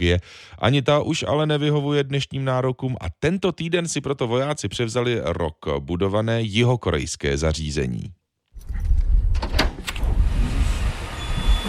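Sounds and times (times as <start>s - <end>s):
speech: 0.0s - 8.9s
door of a red-and-white striped container cabin at an airport runway opening: 8.6s - 11.6s
steady wind-like rumble: 8.7s - 11.6s.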